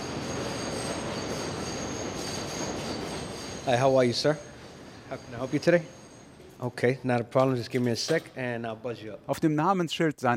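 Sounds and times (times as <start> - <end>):
New York subway train rumbling near Long Island City: 0.0 - 6.4
high sustained metallic subway wheel squeals: 0.0 - 7.0
speech: 3.7 - 4.5, 5.1 - 6.0, 6.6 - 10.3.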